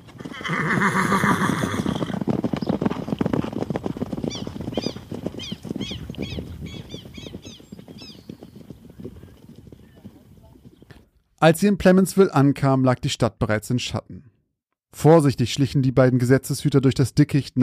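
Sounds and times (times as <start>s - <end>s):
horses neighing: 0.0s - 11.0s
hooves clip-clopping as riders set off: 0.0s - 11.2s
speech: 11.4s - 14.3s, 14.9s - 17.6s.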